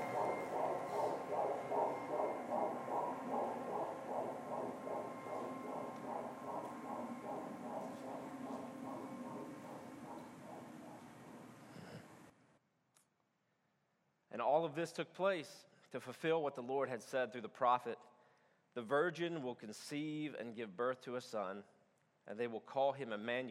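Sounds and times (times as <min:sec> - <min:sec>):
rhythmic heartbeat thumping: 0:00.0 - 0:12.0
low droning hum: 0:00.0 - 0:12.3
speech: 0:14.4 - 0:18.1, 0:18.8 - 0:21.7, 0:22.3 - 0:23.4.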